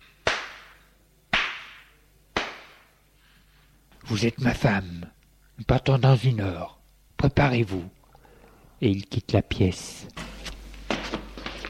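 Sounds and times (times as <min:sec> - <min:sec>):
slaps across the face: 0:00.2 - 0:02.9
speech: 0:04.1 - 0:08.0, 0:08.8 - 0:10.2.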